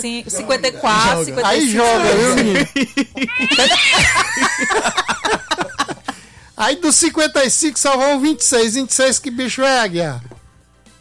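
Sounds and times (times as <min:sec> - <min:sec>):
speech: 0:00.0 - 0:05.4, 0:06.6 - 0:10.3
laughter: 0:00.6 - 0:06.3
cat meowing: 0:03.3 - 0:04.4.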